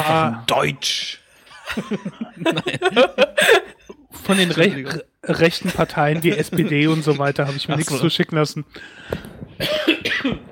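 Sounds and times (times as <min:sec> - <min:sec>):
speech: 0:00.1 - 0:10.5
laughter: 0:01.5 - 0:08.1
person coughing: 0:09.6 - 0:10.5.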